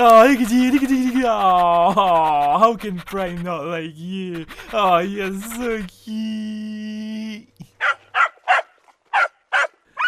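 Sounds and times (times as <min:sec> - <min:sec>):
speech: 0:00.0 - 0:06.8
dog barking: 0:07.8 - 0:10.0.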